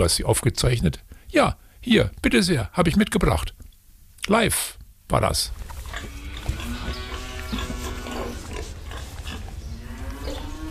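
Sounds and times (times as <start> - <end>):
speech: 0.0 - 3.6, 4.2 - 6.2
cows lowing in a cow barn: 5.6 - 10.6
pigs and piglets grunting in a cow barn: 5.8 - 10.6.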